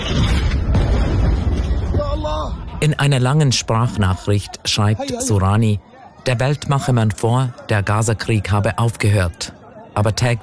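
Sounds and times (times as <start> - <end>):
night-time explosions rumbling through a city: 0.0 - 2.8
speech: 2.8 - 10.4.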